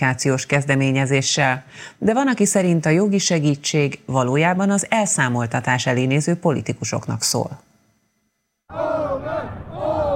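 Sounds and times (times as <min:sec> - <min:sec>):
speech: 0:00.0 - 0:07.7
celebrating crowd cheering and shouting on parliamentary election night: 0:08.7 - 0:10.1.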